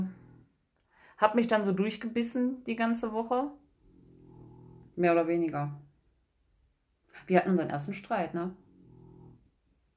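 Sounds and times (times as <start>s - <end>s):
low rumbling snore: 0.0s - 0.6s, 3.7s - 5.1s, 8.4s - 9.7s
speech: 1.2s - 3.6s, 5.0s - 5.9s, 7.1s - 8.6s.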